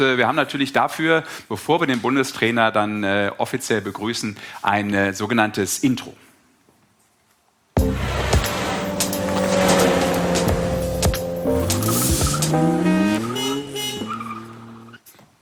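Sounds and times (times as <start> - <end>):
speech: 0.0 - 6.3
car engine revving as it accelerates: 7.8 - 15.0
car tires squealing as it pulls up: 7.8 - 15.0.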